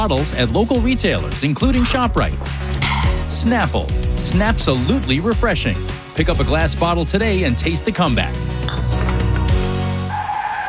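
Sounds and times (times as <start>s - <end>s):
speech: 0.0s - 8.8s
car tires skidding in a crash sound effect: 10.0s - 10.6s.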